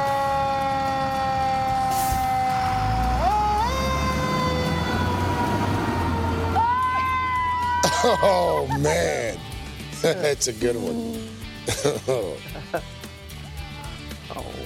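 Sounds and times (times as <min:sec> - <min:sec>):
fire truck heavy engine rumble: 0:00.0 - 0:07.8
fire truck siren wailing in a parade passing a house in New Jersey: 0:00.0 - 0:08.1
laughter: 0:07.5 - 0:13.0
speech: 0:08.0 - 0:09.4, 0:10.0 - 0:13.0.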